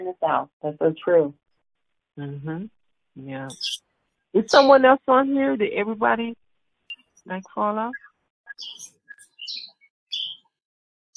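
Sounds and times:
speech: 0:00.1 - 0:01.4, 0:02.2 - 0:06.4, 0:07.2 - 0:08.0, 0:08.6 - 0:08.9
bright high-pitched birds chirping: 0:03.5 - 0:03.8, 0:04.4 - 0:05.0, 0:06.9 - 0:10.5.

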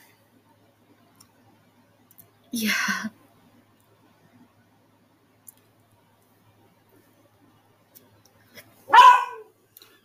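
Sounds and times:
speech: 0:02.5 - 0:03.2
dog barking: 0:08.9 - 0:09.5.

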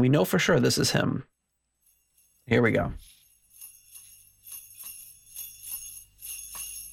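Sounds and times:
speech: 0:00.0 - 0:01.3, 0:02.5 - 0:03.1
sleigh bells jingling in a song: 0:01.3 - 0:06.9.

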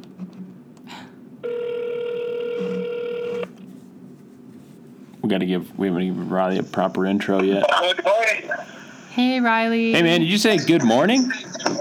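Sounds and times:
quiet hum: 0:00.0 - 0:09.8
buzzing phone ringback tone as a call is placed: 0:01.4 - 0:03.5
speech: 0:05.3 - 0:11.7.

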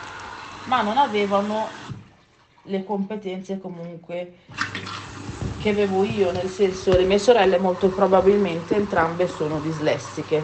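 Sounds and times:
washing machine filling with water: 0:00.0 - 0:10.4
speech: 0:00.7 - 0:01.8, 0:02.6 - 0:04.7, 0:05.6 - 0:10.4.

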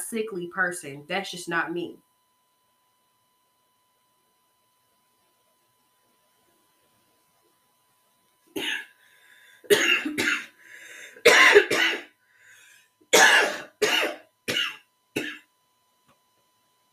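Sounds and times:
speech: 0:00.1 - 0:02.1
person coughing harshly: 0:08.6 - 0:08.9, 0:09.7 - 0:10.5, 0:11.2 - 0:12.1, 0:13.1 - 0:15.5.

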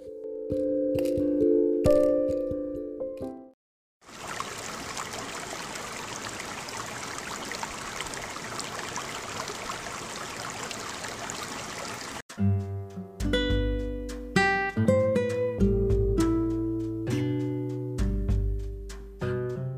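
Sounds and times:
gentle instrumental music: 0:00.0 - 0:03.6, 0:12.3 - 0:19.7
running water rinsing skincare product off the face: 0:04.0 - 0:12.2.

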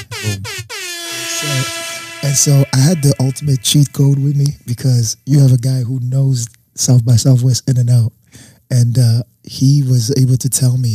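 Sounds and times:
loud blaring air horn blasts: 0:00.0 - 0:04.6
speech: 0:01.4 - 0:10.9.

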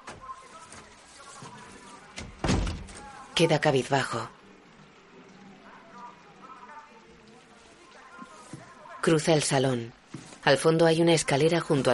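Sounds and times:
door shutting in a house: 0:02.2 - 0:03.1
speech: 0:03.4 - 0:04.4, 0:09.0 - 0:11.9.

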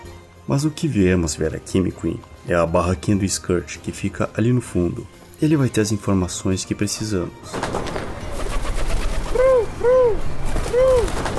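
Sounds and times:
speech: 0:00.5 - 0:08.0
pigeon cooing: 0:08.1 - 0:11.3.

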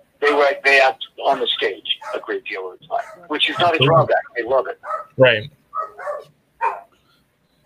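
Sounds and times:
speech: 0:00.4 - 0:05.6
small Beagle and Yorkshire Terrier mix dog barking: 0:02.0 - 0:02.3, 0:02.9 - 0:04.1, 0:04.8 - 0:06.9.

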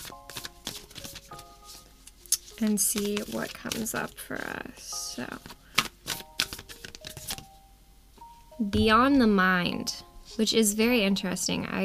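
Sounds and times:
deck of cards being shuffled by hand: 0:00.0 - 0:07.5
speech: 0:02.6 - 0:05.6, 0:08.6 - 0:11.8.

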